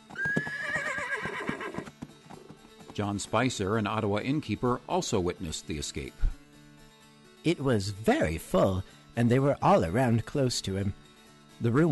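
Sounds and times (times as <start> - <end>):
horse whinnying: 0.0 - 2.0
horse hooves clip-clopping as a horse-drawn carriage pulls away: 0.0 - 4.7
speech: 3.0 - 6.3, 7.4 - 11.0, 11.6 - 11.9.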